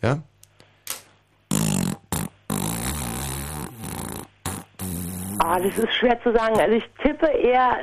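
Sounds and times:
speech: 0.0 - 0.3, 5.5 - 7.8
horse farting: 1.5 - 5.9.

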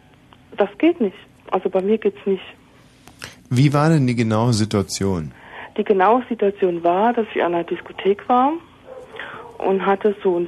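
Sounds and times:
speech: 0.6 - 2.6, 3.5 - 8.7, 9.6 - 10.4
dog barking in background: 8.8 - 9.7.

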